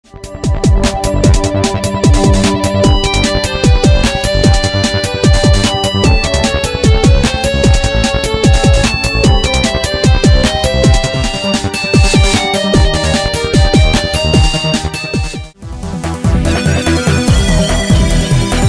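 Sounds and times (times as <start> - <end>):
pop music: 0.4 - 18.6.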